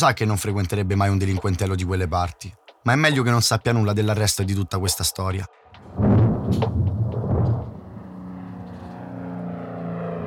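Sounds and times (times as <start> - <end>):
speech: 0.0 - 6.8
ATR-42 turboprop airliner engines droning through a thunderstorm: 5.5 - 10.2
rumbling crash of thunder: 5.8 - 8.1.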